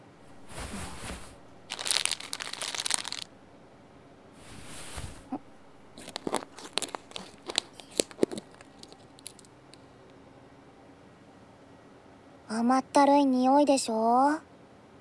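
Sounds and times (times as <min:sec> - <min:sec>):
sharp clicks and rustles: 0:00.6 - 0:03.4, 0:05.9 - 0:09.8
package of sugar being opened for making caramel candy: 0:01.4 - 0:03.4, 0:05.8 - 0:09.5
speech: 0:12.7 - 0:14.5.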